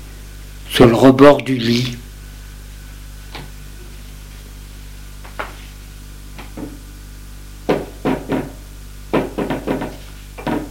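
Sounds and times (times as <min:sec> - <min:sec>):
speech: 0:00.8 - 0:02.0
knocking on a bedroom door: 0:07.7 - 0:10.6.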